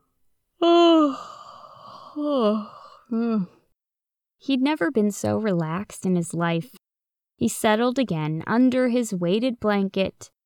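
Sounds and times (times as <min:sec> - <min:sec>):
person giving a voiced yawn: 0:00.6 - 0:03.6
speech: 0:02.2 - 0:03.6, 0:04.4 - 0:06.8, 0:07.4 - 0:10.4.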